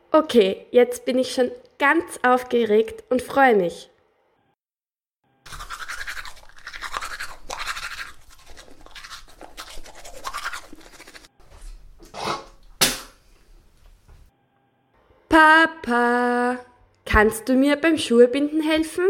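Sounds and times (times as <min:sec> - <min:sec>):
speech: 0:00.1 - 0:03.9, 0:15.4 - 0:19.0
toothbrush scrubbing teeth: 0:05.5 - 0:12.5.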